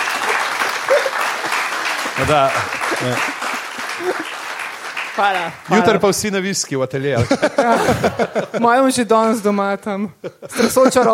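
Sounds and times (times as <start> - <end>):
laughter: 0.0 - 4.5, 7.1 - 8.8, 10.2 - 11.1
audience applause for a performer's first appearance: 0.0 - 6.2
speech: 2.2 - 4.4, 5.2 - 11.1.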